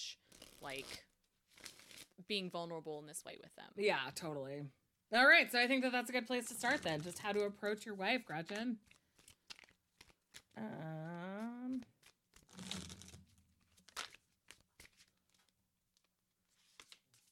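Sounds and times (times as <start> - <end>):
speech: 0.0 - 1.7, 2.3 - 9.0, 10.6 - 11.1
tarot cards being shuffled and handled: 0.3 - 2.2, 8.5 - 10.6, 11.7 - 17.3.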